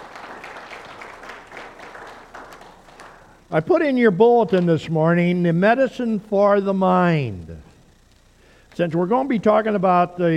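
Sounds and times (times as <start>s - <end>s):
audience applauding: 0.0s - 3.4s
speech: 3.5s - 7.7s, 8.8s - 10.3s.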